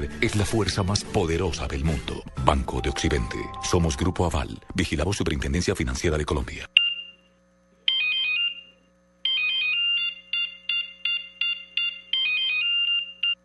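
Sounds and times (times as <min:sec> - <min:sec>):
speech: 0:00.0 - 0:06.7
mobile phone ringtone with bright electronic melody: 0:07.9 - 0:13.4.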